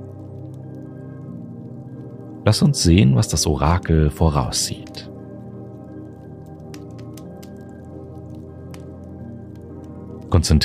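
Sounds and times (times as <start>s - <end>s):
melted wax crackling and dripping into cold water: 0.0s - 10.6s
speech: 2.4s - 5.1s, 10.4s - 10.6s.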